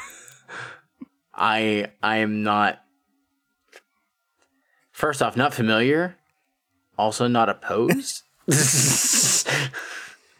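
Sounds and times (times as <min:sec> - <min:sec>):
speech: 0:01.4 - 0:02.8, 0:05.0 - 0:06.2, 0:07.0 - 0:10.0
person imitating a cat's hiss: 0:08.5 - 0:10.0.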